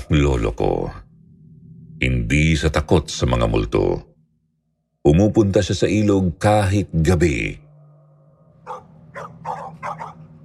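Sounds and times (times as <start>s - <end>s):
low steady hum: 0.0s - 10.4s
speech: 0.1s - 1.0s, 2.0s - 4.1s, 5.0s - 7.6s
pet dogs barking: 8.6s - 10.4s.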